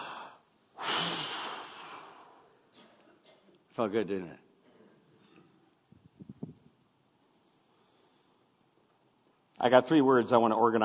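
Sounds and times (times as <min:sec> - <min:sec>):
group of people taking a collective deep breath: 0:00.0 - 0:02.6, 0:07.5 - 0:08.6
speech: 0:03.8 - 0:04.5, 0:09.6 - 0:10.8.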